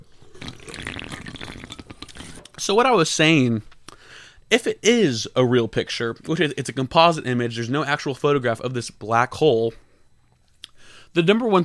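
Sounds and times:
energy drink being poured with fizzy crackles: 0.1 - 2.5
speech: 2.6 - 3.7, 4.5 - 9.8, 11.1 - 11.6.

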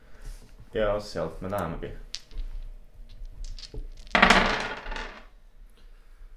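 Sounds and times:
speech: 0.7 - 2.1
three dice clattering on a hard surface: 1.6 - 5.3.

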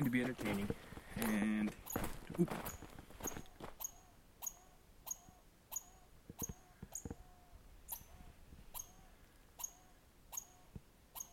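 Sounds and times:
speech: 0.0 - 2.8
soft footstep thumps: 0.0 - 3.8
agitated red squirrel chattering outdoors: 2.6 - 11.3.

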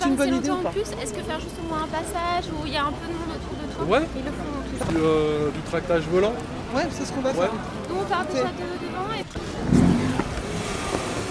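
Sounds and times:
steady street traffic noise in a town centre on a market day: 0.0 - 11.2
speech: 0.1 - 9.9
car engine revving in a town centre: 9.3 - 11.2.

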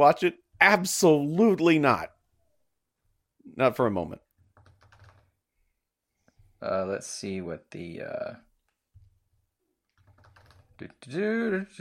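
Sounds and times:
speech: 0.0 - 2.2, 3.4 - 4.2, 6.6 - 8.4, 10.8 - 11.7
soft computer keyboard typing: 4.3 - 5.4, 9.8 - 11.0.

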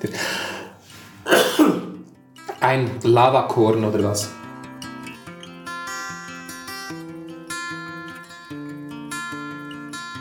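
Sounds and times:
person clearing their throat: 1.2 - 2.1
person coughing: 1.2 - 2.1
speech: 2.7 - 4.4.

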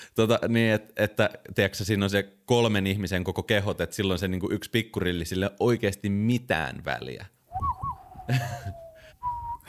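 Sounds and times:
speech: 0.1 - 8.8
person whistling a short western-style melody: 7.5 - 9.6.

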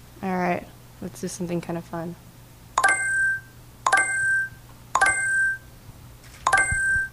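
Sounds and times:
speech: 0.2 - 2.3
Google Glass electronic bling chimes from target-shooting game: 2.8 - 5.7, 6.5 - 7.1.

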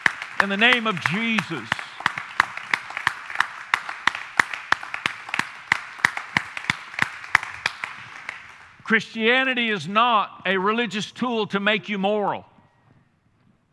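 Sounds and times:
crowd clapping in a brisk steady rhythm: 0.0 - 9.8
speech: 0.4 - 1.8, 8.9 - 12.5.

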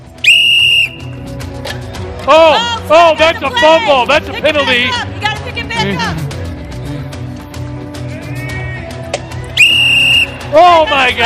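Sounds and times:
referee's whistle blown to start play: 0.2 - 1.1, 9.6 - 10.5
speech: 2.3 - 5.2, 5.8 - 6.2, 10.5 - 11.2.

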